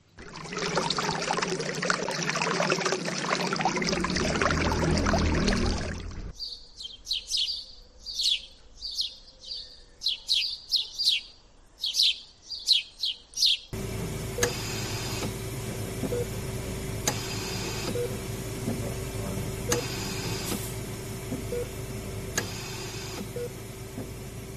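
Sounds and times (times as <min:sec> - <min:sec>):
steady mechanical hum of a ventilator: 0:00.2 - 0:06.3, 0:13.8 - 0:24.5
water rushing in a lone fountain in empty city streets: 0:00.2 - 0:06.3, 0:13.8 - 0:24.5
birds chirping in empty city streets during pandemic lockdown: 0:03.1 - 0:24.5.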